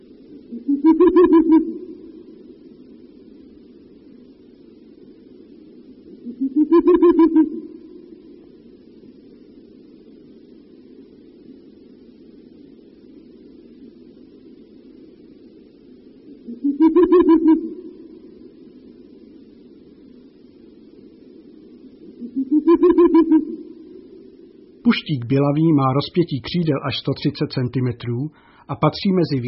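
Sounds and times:
male Ural owl hooting near its nest: 0.0s - 3.0s, 6.0s - 8.5s, 16.2s - 19.0s, 21.4s - 25.0s
male Ural owl low rumbling bubbling call: 0.4s - 2.6s, 6.1s - 8.4s, 16.3s - 18.7s, 21.7s - 24.9s
speech: 0.5s - 1.9s, 25.1s - 29.4s.

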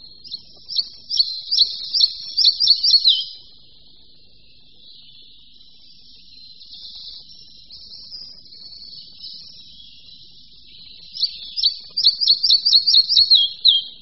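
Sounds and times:
red-breasted flycatcher singing: 0.0s - 3.6s, 4.5s - 14.0s
soft bird twittering: 0.0s - 14.0s.

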